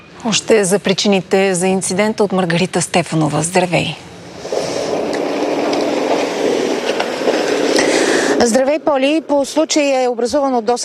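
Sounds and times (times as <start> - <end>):
speech: 0.2 - 4.1, 8.4 - 10.8
train rolling past a railway crossing: 3.5 - 10.1
wheels clicking over rail joints: 4.3 - 10.1.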